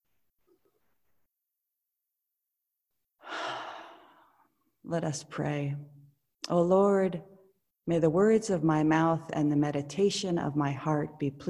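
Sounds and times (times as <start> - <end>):
deep sighing breath out during a church prayer service: 3.2 - 4.5
speech: 4.9 - 7.3, 7.9 - 11.4.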